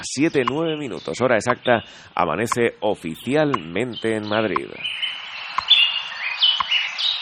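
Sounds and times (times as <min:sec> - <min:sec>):
speech: 0:00.0 - 0:05.1
small birds chirping at dawn in Madrid: 0:00.0 - 0:07.2.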